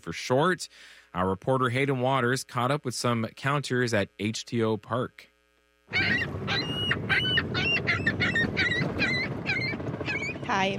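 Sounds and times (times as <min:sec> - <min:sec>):
speech: 0:00.0 - 0:05.3, 0:05.9 - 0:07.4, 0:10.6 - 0:10.7
outdoor waterfront noise at HTO Park on Toronto's waterfront: 0:05.9 - 0:10.7
seagulls squawking at HTO Park on Toronto's waterfront: 0:05.9 - 0:10.7.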